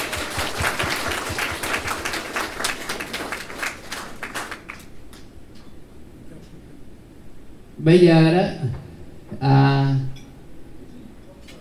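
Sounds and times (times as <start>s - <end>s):
audience applause at a gathering of an overseas Hue medical association: 0.0s - 5.2s
speech: 7.8s - 8.8s, 9.4s - 10.1s.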